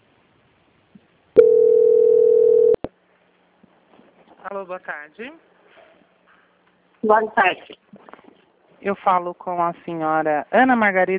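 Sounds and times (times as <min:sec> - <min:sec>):
telephone line tone while a bank call is transferred: 0:01.4 - 0:02.9
speech: 0:04.5 - 0:05.5, 0:07.0 - 0:07.9, 0:08.8 - 0:11.1.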